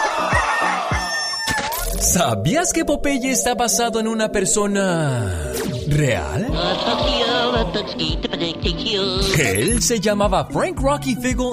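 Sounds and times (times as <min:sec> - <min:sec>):
laughter: 0:00.0 - 0:01.1, 0:06.4 - 0:08.4
rooster crowing and clucking: 0:00.0 - 0:01.8
speech: 0:02.0 - 0:11.5.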